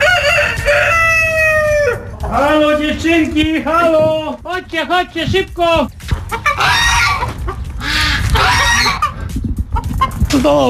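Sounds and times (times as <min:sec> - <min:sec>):
chicken on a farm calling in hot weather: 0:00.0 - 0:02.8, 0:06.2 - 0:10.2
hens clucking and squawking in an airy henhouse: 0:00.0 - 0:04.2, 0:06.1 - 0:10.3
speech: 0:02.4 - 0:06.0, 0:10.4 - 0:10.6.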